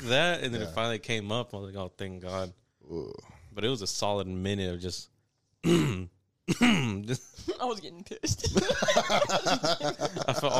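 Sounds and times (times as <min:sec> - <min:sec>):
speech: 0:00.0 - 0:10.5
person vocally imitating coughing and throat clearing: 0:05.6 - 0:07.0
laughter: 0:08.3 - 0:10.5.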